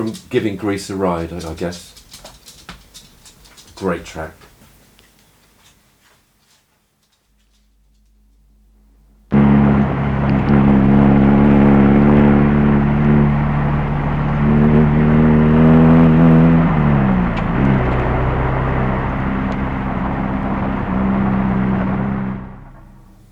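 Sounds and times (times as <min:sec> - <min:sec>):
speech: 0:00.0 - 0:02.0, 0:03.8 - 0:04.5
sports car engine roaring as it speeds past: 0:09.3 - 0:23.3.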